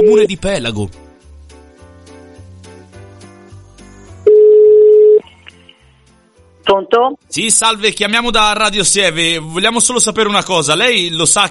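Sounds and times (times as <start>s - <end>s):
speech: 0.0s - 1.0s, 6.7s - 11.4s
telephone ringback tone over a phone line: 4.3s - 5.2s.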